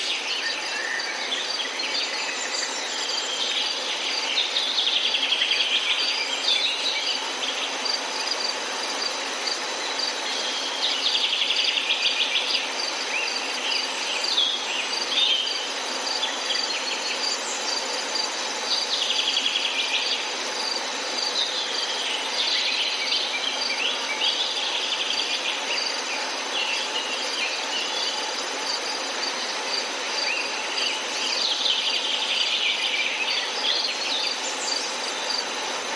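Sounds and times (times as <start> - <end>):
dense chorus of insects and crickets in a forest: 0.0 - 35.9.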